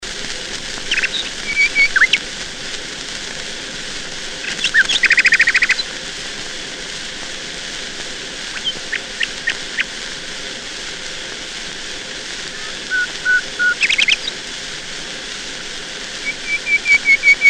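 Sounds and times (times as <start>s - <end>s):
steady hiss: 0.0s - 17.4s
nightingale singing: 0.8s - 2.2s, 4.4s - 5.9s, 8.5s - 9.9s, 12.5s - 14.4s, 16.2s - 17.4s.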